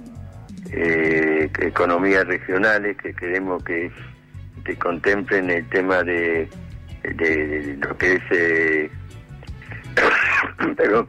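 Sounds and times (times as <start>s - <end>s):
speech: 0.7s - 9.1s, 10.6s - 11.0s
harsh broadband coughs: 9.9s - 10.9s.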